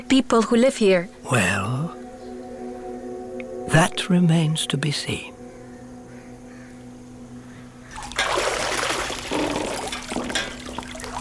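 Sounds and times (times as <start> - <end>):
speech: 0.1 - 2.0, 3.7 - 5.3
hot water pouring into a bath: 8.0 - 11.2.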